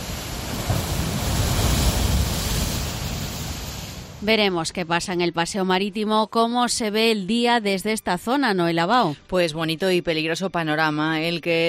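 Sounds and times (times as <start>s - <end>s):
heavy ocean surf breaking at the beach: 0.0s - 4.3s
gusty wind: 0.0s - 5.3s
speech: 4.2s - 11.6s.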